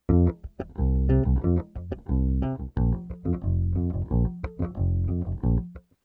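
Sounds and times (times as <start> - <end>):
vaneira bass loops: 0.1 - 5.8.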